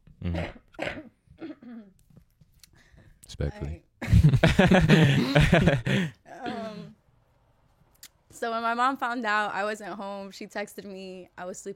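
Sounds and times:
person coughing: 0:00.2 - 0:01.9, 0:04.8 - 0:07.0
speech: 0:03.4 - 0:06.2, 0:08.4 - 0:11.7.

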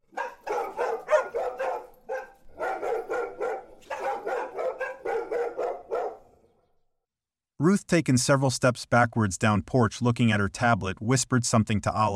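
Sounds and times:
dogs barking and growling: 0:00.0 - 0:06.5
speech: 0:07.6 - 0:12.1.

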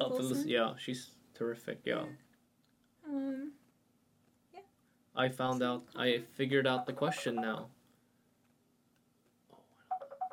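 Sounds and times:
speech: 0:00.1 - 0:02.3, 0:05.2 - 0:07.8
phone ringtone with bright repeating electronic pulses: 0:06.8 - 0:07.6, 0:09.9 - 0:10.3.

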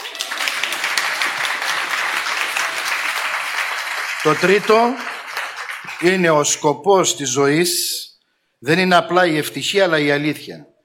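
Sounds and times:
audience applause: 0:00.0 - 0:06.6
speech: 0:04.2 - 0:05.1, 0:06.0 - 0:08.0, 0:08.6 - 0:10.7.

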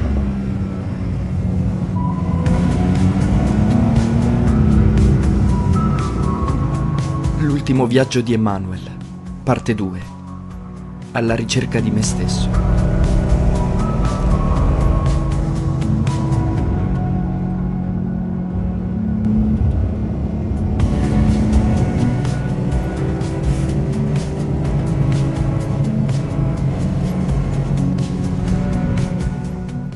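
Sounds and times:
car being driven, engine and road rumble: 0:00.0 - 0:29.9
speech: 0:07.7 - 0:10.2, 0:11.1 - 0:12.7.

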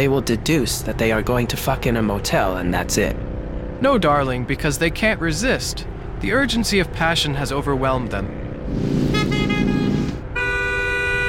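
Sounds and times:
speech: 0:00.0 - 0:03.2, 0:03.8 - 0:09.1
road rumble: 0:00.0 - 0:11.2
car horn honking: 0:08.9 - 0:11.2.

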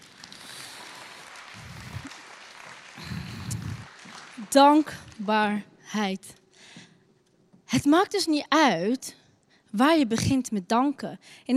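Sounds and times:
crowd applauding: 0:00.0 - 0:05.2
speech: 0:04.5 - 0:06.4, 0:07.7 - 0:11.5.

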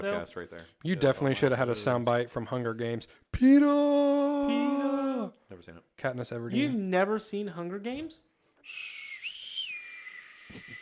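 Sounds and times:
speech: 0:00.0 - 0:09.0
person whistling a short melody: 0:08.6 - 0:10.8.

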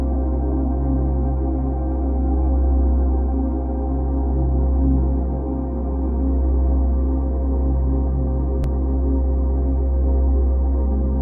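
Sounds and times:
528 Hz solfeggio frequency tone: 0:00.0 - 0:11.2
thick steady drone with layered pitches: 0:00.0 - 0:11.2.

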